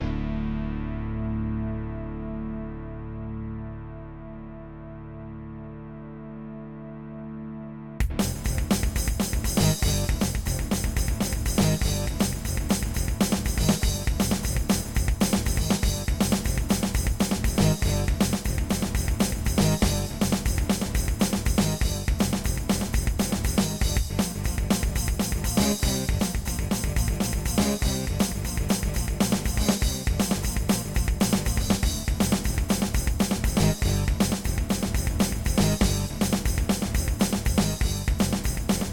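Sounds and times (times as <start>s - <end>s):
Yamaha DB50XG soundcard test music: 0.1s - 38.9s.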